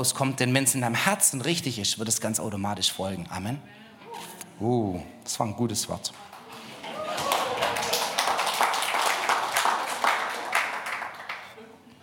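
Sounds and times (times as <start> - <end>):
speech: 0.0 - 6.3
audience clapping: 6.2 - 11.8.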